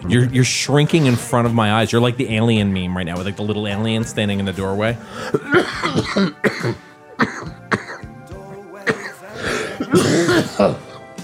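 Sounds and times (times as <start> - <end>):
speech: 0.1 - 7.6, 9.9 - 10.8
person with a tickle in the throat coughing: 5.1 - 8.1, 8.8 - 11.1.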